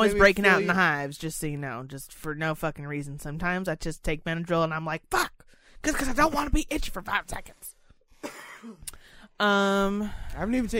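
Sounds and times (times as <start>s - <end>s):
speech: 0.0s - 10.7s
person coughing: 8.2s - 8.8s.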